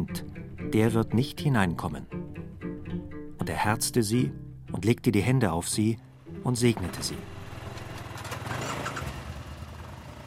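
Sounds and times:
speech: 0.0s - 2.2s, 3.5s - 7.4s
motorcycle engine idling outside a church: 6.0s - 10.2s.

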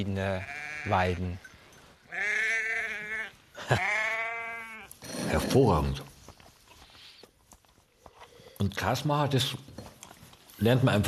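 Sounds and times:
speech: 0.0s - 1.5s, 3.7s - 3.9s, 5.3s - 6.1s, 8.6s - 9.7s, 10.6s - 11.0s
sheep bleating: 0.2s - 1.3s, 2.1s - 5.1s.

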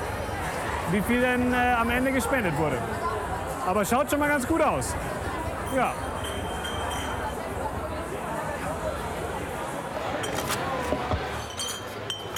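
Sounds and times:
crowd murmur: 0.0s - 12.3s
speech: 0.9s - 3.1s, 3.7s - 6.1s
deposit cups and glasses clinking while collected: 5.7s - 7.4s, 10.2s - 12.3s.

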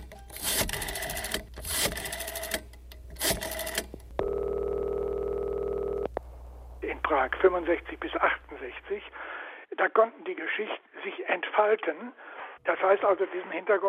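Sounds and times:
steady unbroken telephone dial tone: 0.4s - 2.6s, 3.2s - 6.1s
buzzy telephone line tones in short interrupted bursts: 3.5s - 6.1s
speech: 7.2s - 9.2s, 9.8s - 13.8s.

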